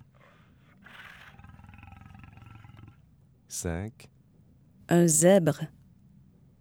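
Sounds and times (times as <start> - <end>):
lion roaring: 0.0 - 3.2
speech: 3.5 - 4.2, 4.9 - 5.8.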